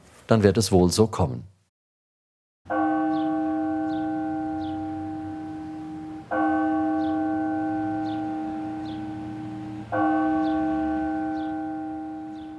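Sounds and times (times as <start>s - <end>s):
speech: 0.3s - 1.5s
town hall bells ringing at midday: 2.7s - 12.5s.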